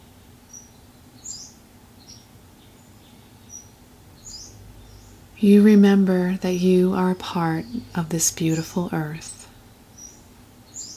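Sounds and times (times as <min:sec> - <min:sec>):
birds chirping outdoors: 0:00.4 - 0:10.9
steady low outdoor rumble: 0:03.8 - 0:10.6
speech: 0:05.4 - 0:09.4.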